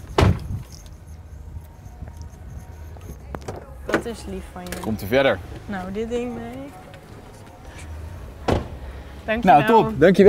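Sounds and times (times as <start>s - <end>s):
taxi car door being pulled open by the driver: 3.3s - 9.1s
speech: 3.9s - 6.8s, 9.3s - 10.2s
brief low thud: 8.4s - 8.8s.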